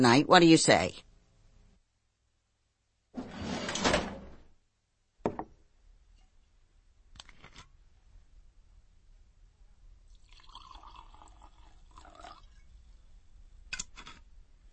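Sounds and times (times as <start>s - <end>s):
speech: 0.0s - 1.1s
desk drawer holding whiskey sliding open: 3.2s - 4.4s.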